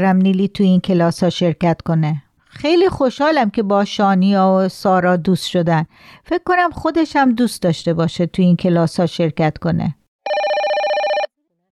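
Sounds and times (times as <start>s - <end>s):
speech: 0.0s - 10.4s
telephone ringing with trilling bell tones: 10.2s - 11.3s.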